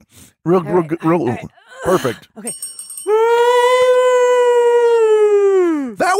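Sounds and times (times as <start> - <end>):
speech: 0.6 - 2.9
person imitating a Bigfoot call with a long howling cry: 3.1 - 6.0.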